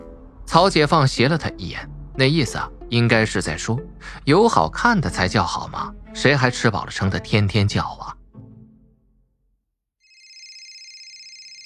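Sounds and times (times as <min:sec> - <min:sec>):
speech: 0:00.5 - 0:08.2
mobile phone ringtone: 0:10.0 - 0:11.6.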